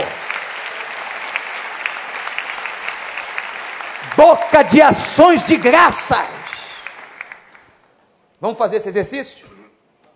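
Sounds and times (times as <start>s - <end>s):
audience applauding: 0.0s - 7.8s
speech: 4.2s - 6.4s, 8.4s - 9.6s.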